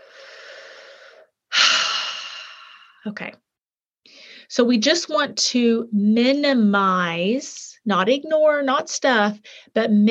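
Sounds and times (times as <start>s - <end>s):
deep breath: 0.0s - 3.0s, 4.1s - 4.5s
speech: 3.0s - 3.5s, 4.5s - 10.0s.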